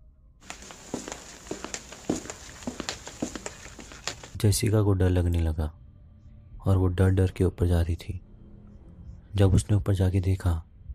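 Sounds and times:
footsteps of two people walking: 0.4s - 4.4s
speech: 4.4s - 5.8s, 6.6s - 8.3s, 9.3s - 10.7s.

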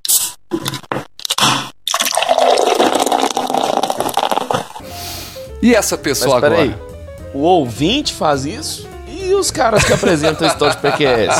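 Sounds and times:
can or bottle of beer being cracked open: 1.2s - 4.8s
beer pouring into a glass with foamy bubbling: 1.9s - 4.8s
speech: 5.6s - 11.3s
laughter: 9.7s - 11.3s.

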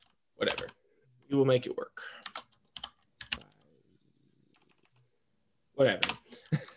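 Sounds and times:
speech: 1.3s - 2.2s, 5.8s - 6.2s
typing on a computer keyboard: 2.2s - 3.7s, 4.5s - 5.0s, 6.0s - 6.3s.

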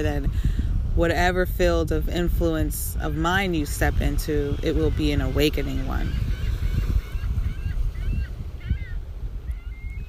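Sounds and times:
speech: 0.0s - 6.4s
low rumble of wind or water: 0.0s - 10.0s
seagulls calling: 3.6s - 10.0s.

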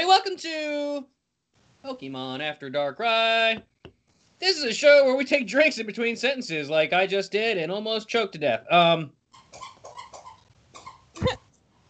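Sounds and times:
speech: 0.2s - 1.2s, 1.8s - 3.7s, 4.4s - 9.7s, 11.2s - 11.4s
dog squeaking a squeaker toy: 9.3s - 11.4s.

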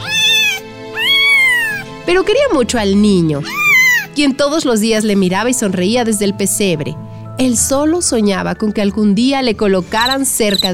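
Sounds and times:
cat meowing: 0.0s - 1.9s, 3.5s - 4.1s
speech: 2.1s - 3.6s, 4.2s - 10.7s.

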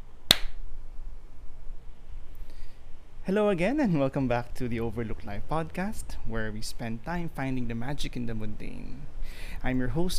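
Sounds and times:
faint low room hum: 0.0s - 10.1s
single sharp hand clap: 0.3s - 0.6s
speech: 3.2s - 10.1s.

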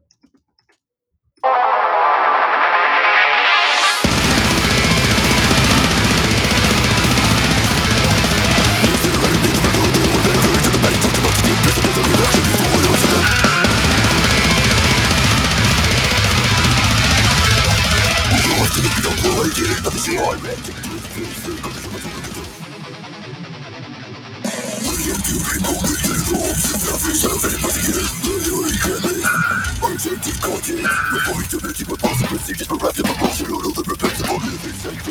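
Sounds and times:
heavy guitars: 1.4s - 35.0s
loud dense extreme metal song: 1.4s - 35.0s
pounding drums: 4.0s - 18.6s
intense rapid-fire vocals: 4.0s - 23.4s, 24.4s - 35.0s.

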